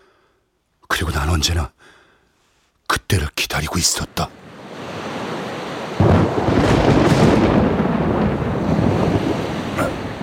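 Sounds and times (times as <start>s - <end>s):
speech: 1.0s - 2.0s, 3.0s - 4.6s
thunder rumbling: 4.5s - 10.2s.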